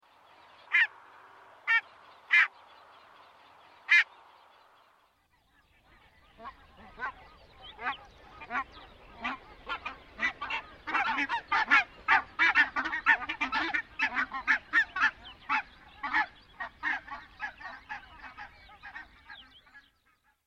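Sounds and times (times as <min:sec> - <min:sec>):
barnacle goose: 0:00.7 - 0:01.0, 0:01.6 - 0:02.5, 0:03.9 - 0:04.1, 0:05.5 - 0:20.4.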